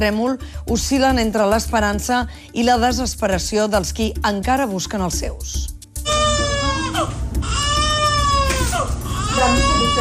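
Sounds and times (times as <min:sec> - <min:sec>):
speech: 0:00.0 - 0:05.8
baby crying after rescue from earthquake rubble: 0:06.0 - 0:09.9.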